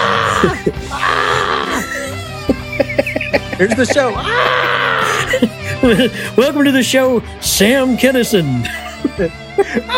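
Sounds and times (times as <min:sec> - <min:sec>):
man grunting yells: 0:00.0 - 0:01.9, 0:04.2 - 0:05.2
man screaming: 0:00.0 - 0:02.4, 0:04.1 - 0:05.4
laughter: 0:00.3 - 0:06.3, 0:08.6 - 0:09.9
speech: 0:00.4 - 0:01.0, 0:03.6 - 0:09.9.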